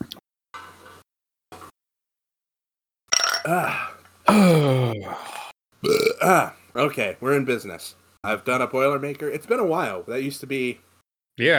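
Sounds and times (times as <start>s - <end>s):
speech: 3.4s - 5.4s, 6.2s - 11.5s
burps into microphone after drinking whiskey and cider: 3.4s - 6.5s.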